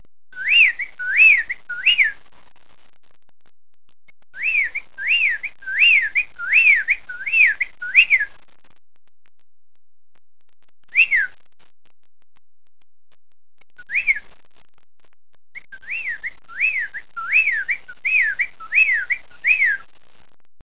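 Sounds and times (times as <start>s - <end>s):
bird whistling calls: 0.4s - 2.2s, 4.4s - 8.3s, 11.0s - 11.3s, 13.8s - 14.2s, 15.6s - 19.8s.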